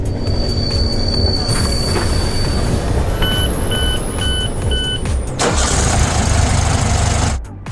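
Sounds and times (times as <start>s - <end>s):
high metallic train wheel squeal: 0.0s - 5.2s
regular warning beeps: 0.0s - 5.3s
railway carriage rolling along with continuous rumbling: 0.0s - 7.4s.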